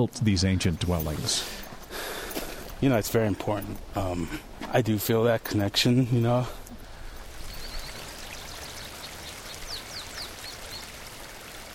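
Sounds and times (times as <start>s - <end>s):
speech: 0.0s - 1.6s, 2.8s - 6.6s
creek water flowing through canyon forest: 0.0s - 11.7s
faint bird chirps: 7.2s - 10.9s.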